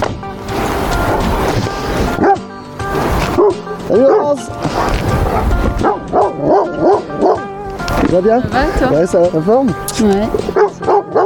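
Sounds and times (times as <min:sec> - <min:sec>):
outdoor background: 0:00.0 - 0:11.2
dogs barking and yipping in greeting at a market gardener's farm in Bédouès: 0:02.1 - 0:02.6, 0:03.3 - 0:07.9, 0:10.4 - 0:11.2
speech: 0:03.9 - 0:05.5, 0:08.1 - 0:10.7.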